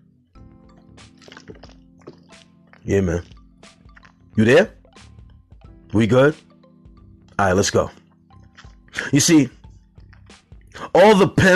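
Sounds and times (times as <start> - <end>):
person drinking water: 0.7 - 4.4
speech: 2.8 - 3.4, 4.4 - 4.8, 6.0 - 6.5, 7.4 - 8.0, 9.1 - 9.6, 11.0 - 11.5.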